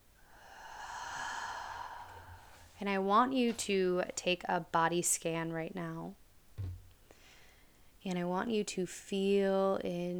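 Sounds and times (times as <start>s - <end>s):
deep inhale and big exhale: 0.2s - 2.8s
speech: 2.8s - 6.2s, 8.0s - 10.1s.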